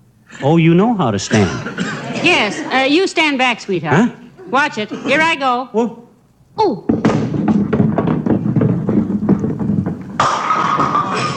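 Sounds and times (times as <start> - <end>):
speech: 0.4 - 6.0, 6.6 - 7.0
laughter: 1.4 - 3.1
bowling ball rolling down the lane: 6.8 - 11.3.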